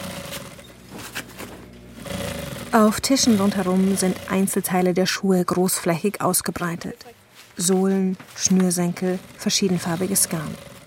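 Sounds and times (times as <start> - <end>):
old sewing machine whirring while stitching thin fabric onto carpet pieces: 0.0 - 0.7, 2.0 - 5.0, 8.4 - 10.8
speech: 2.7 - 10.7.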